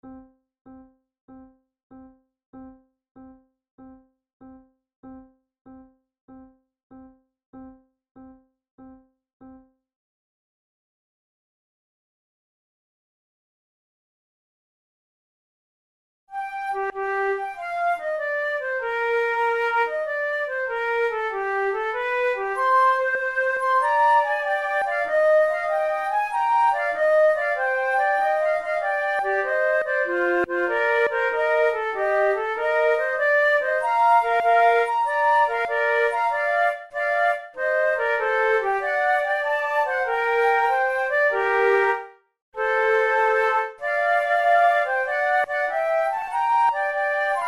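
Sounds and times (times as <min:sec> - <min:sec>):
flute sonata allegro movement: 0:16.3 - 0:47.4.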